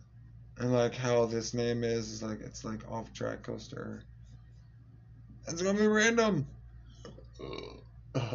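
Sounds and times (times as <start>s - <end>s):
steady low hum: 0.0s - 8.3s
speech: 0.6s - 4.1s, 5.5s - 6.6s, 7.4s - 8.3s
short low rumbling burp: 7.3s - 8.3s.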